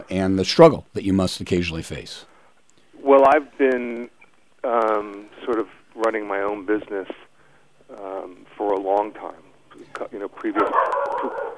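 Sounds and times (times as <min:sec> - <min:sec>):
speech: 0:00.0 - 0:02.3, 0:03.0 - 0:07.3, 0:07.9 - 0:11.5
dogs barking and yipping at a delivery man: 0:10.6 - 0:11.5.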